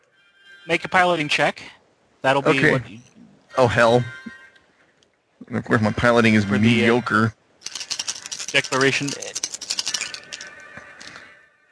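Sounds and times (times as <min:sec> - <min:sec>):
speech: 0:00.7 - 0:04.4, 0:05.5 - 0:07.8, 0:08.5 - 0:09.3
dice shaken and rolled for a piloting check: 0:07.6 - 0:11.2.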